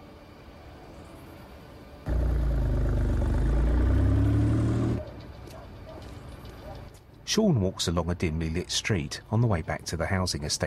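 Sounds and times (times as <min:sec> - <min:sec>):
engine of a black car driving slowly along a dimly lit street: 0:02.1 - 0:05.2
speech: 0:07.3 - 0:10.6.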